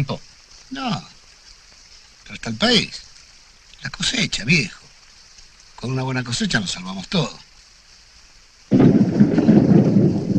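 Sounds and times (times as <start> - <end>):
speech: 0.0 - 1.1, 2.3 - 3.0, 3.8 - 4.8, 5.8 - 7.4
loud dense rain: 0.0 - 10.3
deep thunder rumble: 8.7 - 10.3.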